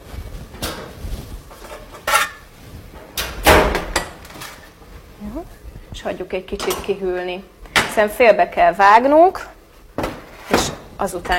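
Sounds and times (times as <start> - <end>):
metallic clanks and scrapes of a tray of baked potatoes from an oven: 1.5 - 2.5
speech: 5.3 - 9.6, 10.5 - 11.3.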